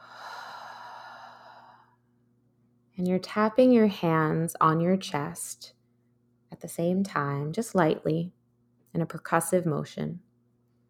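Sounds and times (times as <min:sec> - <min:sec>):
deep breath out: 0:00.0 - 0:02.0
speech: 0:03.0 - 0:05.8, 0:06.6 - 0:10.3.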